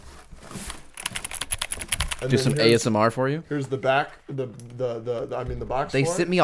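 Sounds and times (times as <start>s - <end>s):
soft handling noise: 0.0s - 2.6s
typing on an RGB backlit mechanical gaming keyboard: 1.0s - 2.5s
speech: 2.2s - 6.4s.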